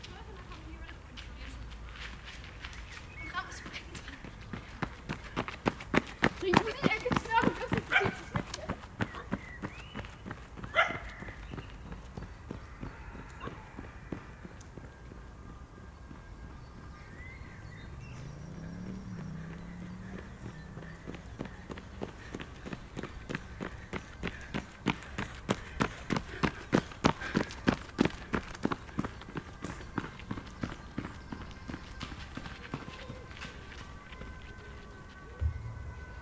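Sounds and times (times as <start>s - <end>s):
quick rhythmic footsteps or hoof-like clopping in a park: 0.0s - 36.1s
low murmur: 32.6s - 36.1s.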